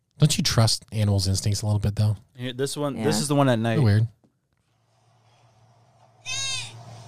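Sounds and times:
speech: 0.5s - 4.2s
goat bleating at night: 6.3s - 6.8s.

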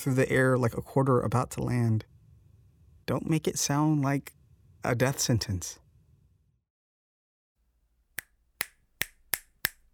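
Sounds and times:
speech: 0.0s - 2.1s, 3.1s - 5.8s
finger snapping: 8.2s - 9.9s.

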